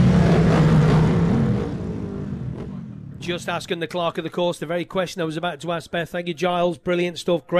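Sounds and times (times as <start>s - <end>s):
racing machines setting off on a warm-up lap with dense engine roar: 0.0s - 4.0s
speech: 3.3s - 7.5s.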